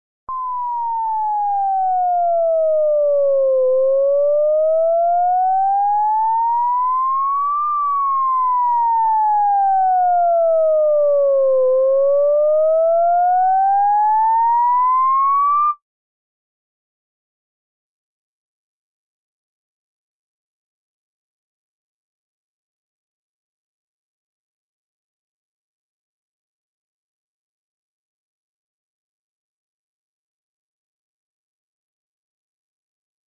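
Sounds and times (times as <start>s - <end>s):
ambulance siren: 0.3s - 15.8s.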